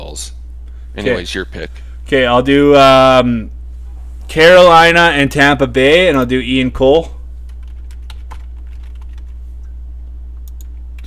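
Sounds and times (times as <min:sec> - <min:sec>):
low electrical hum: 0:00.0 - 0:11.0
speech: 0:00.2 - 0:00.4, 0:01.0 - 0:03.6, 0:04.3 - 0:07.2
typing on a computer keyboard: 0:07.5 - 0:09.4, 0:10.4 - 0:11.0.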